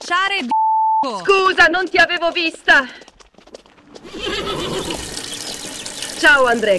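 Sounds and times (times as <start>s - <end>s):
speech: 0.1s - 3.1s, 6.2s - 6.7s
horse whinnying in a royal palace park: 4.0s - 5.7s.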